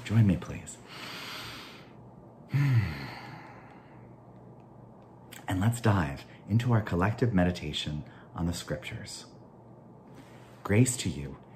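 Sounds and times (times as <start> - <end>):
speech: 0.1 - 1.2, 5.6 - 9.3, 10.7 - 11.4
deep breath with a soft sigh-like exhale: 0.9 - 4.1.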